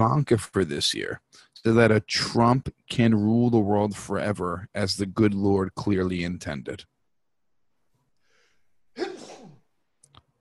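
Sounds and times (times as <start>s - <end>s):
speech: 0.0s - 6.9s, 9.0s - 9.2s
single loud sneeze: 9.0s - 9.6s.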